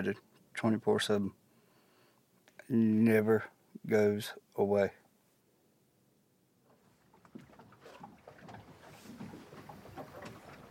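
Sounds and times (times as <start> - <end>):
speech: 0.0 - 1.4, 2.7 - 5.0
light wind: 0.0 - 10.6
knocks and creaks of a small boat hull: 6.6 - 10.6
water sloshing and lapping against a small moving boat: 6.6 - 10.6.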